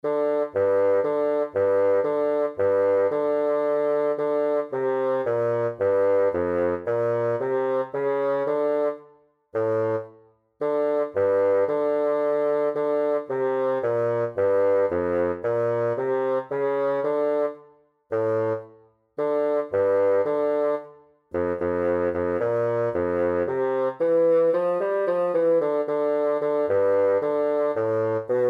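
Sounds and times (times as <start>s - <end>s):
bassoon playing a czardas: 0.0s - 9.0s, 9.6s - 28.4s.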